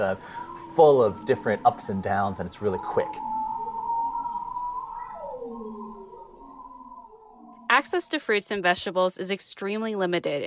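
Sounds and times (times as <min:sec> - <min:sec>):
speech: 0:00.0 - 0:03.3, 0:07.8 - 0:10.4
bearded seal singing underwater: 0:02.6 - 0:07.8.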